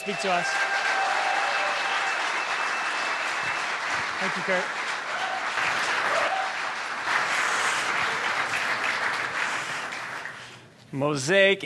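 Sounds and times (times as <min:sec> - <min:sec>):
speech: 0:00.0 - 0:00.7, 0:04.2 - 0:04.8, 0:10.9 - 0:11.6
scattered cheers: 0:00.0 - 0:03.8, 0:05.1 - 0:06.8
large audience applause: 0:00.0 - 0:10.6.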